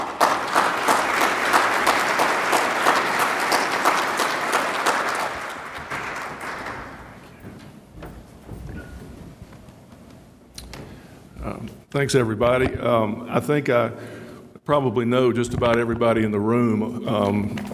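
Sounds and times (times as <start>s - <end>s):
room full of people clapping for a speaker: 0.0s - 7.5s
quiet room noise: 0.0s - 17.7s
speech: 12.0s - 17.7s.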